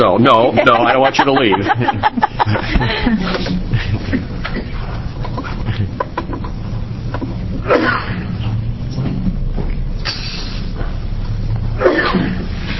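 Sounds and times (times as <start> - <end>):
speech: 0.0 - 4.2
steady low hum: 0.0 - 12.7
laughter: 0.3 - 7.1
person sneezing during a committee hearing on a bill: 7.6 - 8.3, 11.8 - 12.5.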